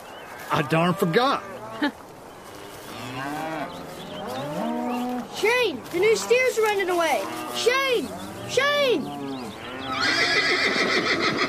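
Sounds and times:
speech: 0.5s - 2.0s, 5.4s - 9.3s, 10.1s - 11.4s
horse galloping: 1.9s - 11.4s
pony whinnying while chasing runaway steers on a ranch: 9.8s - 11.4s.

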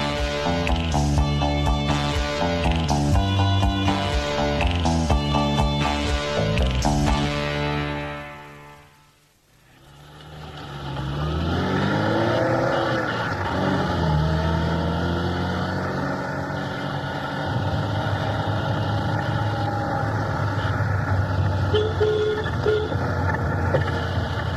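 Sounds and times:
road rumble: 0.0s - 24.5s
car engine droning while driving with several passengers aboard: 9.7s - 24.5s.

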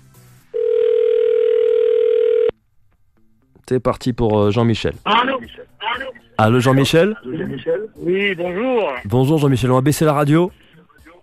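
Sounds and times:
phone ringback tone of an outgoing call: 0.5s - 2.6s
speech: 3.7s - 5.7s, 6.4s - 10.6s.

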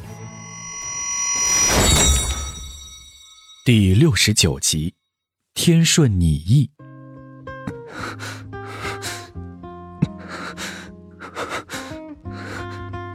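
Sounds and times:
speech: 3.7s - 5.0s, 5.6s - 6.8s, 7.9s - 8.4s
man panting heavily: 7.8s - 9.3s, 10.0s - 12.8s.

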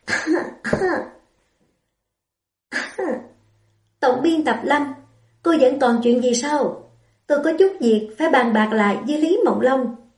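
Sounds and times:
person coughing: 0.0s - 1.2s, 2.7s - 3.4s
speech: 0.8s - 1.2s, 4.1s - 10.0s.

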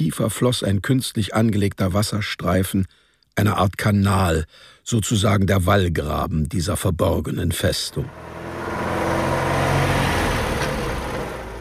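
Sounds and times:
speech: 0.0s - 8.4s
car engine roaring as it races around a town square: 7.7s - 11.6s.

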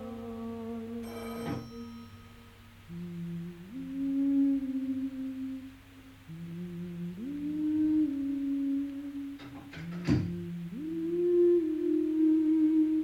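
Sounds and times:
low steady tones shifting between a few pitches: 0.0s - 13.0s
telephone bell ringing: 1.0s - 2.4s.

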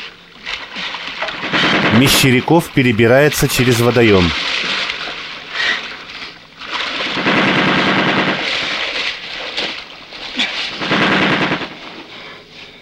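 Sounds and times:
automatic gunfire aimed at soldiers: 1.3s - 2.7s, 6.9s - 9.1s, 10.7s - 12.0s
speech: 2.0s - 4.7s.

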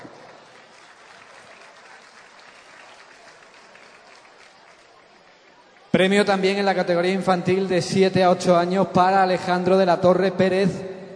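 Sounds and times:
applause for a prize winner at a children's award ceremony in Ubrique: 0.0s - 6.7s
speech: 6.0s - 10.9s.

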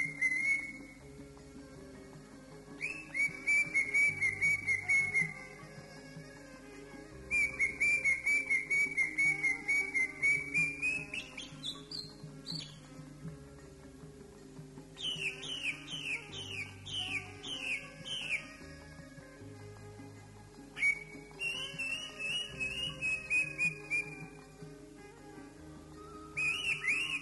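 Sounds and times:
Oriental magpie-robin song with varied whistles: 0.0s - 1.2s, 2.7s - 5.6s, 7.3s - 12.9s, 15.0s - 18.8s, 20.8s - 24.5s, 25.9s - 27.1s.

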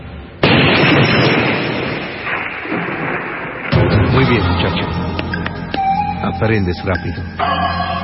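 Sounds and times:
gunshot with a long dense rumbling tail: 0.4s - 5.2s
speech: 4.3s - 5.0s, 6.4s - 7.9s.

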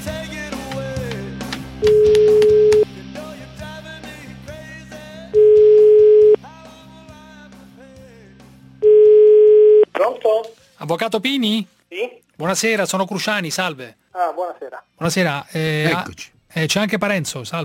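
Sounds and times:
busy music: 0.0s - 17.6s
telephone tones while a call is placed to a lawyer: 1.8s - 2.8s, 5.4s - 6.4s, 8.8s - 9.9s
speech: 10.9s - 17.6s.

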